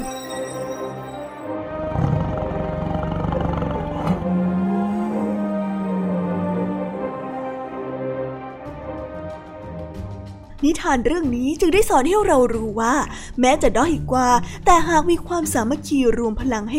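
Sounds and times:
lions roaring and groaning in pain: 1.8s - 6.9s
speech: 10.6s - 16.7s.

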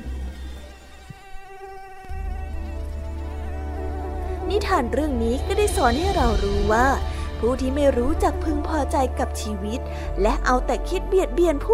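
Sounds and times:
mosquito whine: 0.0s - 7.4s
speech: 4.6s - 11.7s.

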